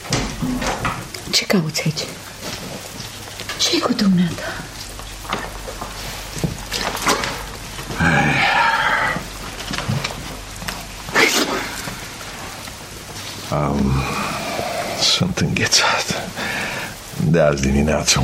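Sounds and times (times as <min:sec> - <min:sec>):
steady rain: 0:00.0 - 0:18.2
speech: 0:01.3 - 0:02.3, 0:03.6 - 0:04.7, 0:15.2 - 0:16.3, 0:17.2 - 0:18.2
person grunting: 0:07.9 - 0:09.3.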